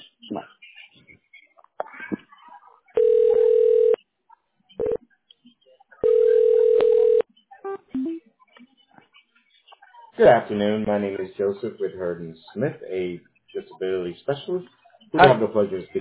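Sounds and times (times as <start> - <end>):
speech: 0.3 - 0.6, 10.2 - 16.0
telephone ringback tones on a call being connected: 3.0 - 4.0, 6.0 - 7.2.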